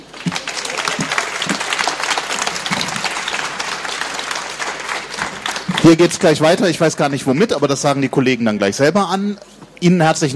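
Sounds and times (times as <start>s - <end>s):
audience applause: 0.0s - 7.1s
speech: 5.8s - 10.3s.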